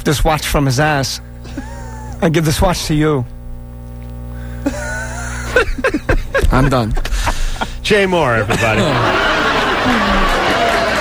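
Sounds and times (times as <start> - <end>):
speech: 0.0 - 1.6, 2.2 - 3.4, 5.6 - 7.1, 7.9 - 9.3
crowd laughing: 4.6 - 7.8, 8.4 - 10.9
crowd murmuring: 6.3 - 10.9.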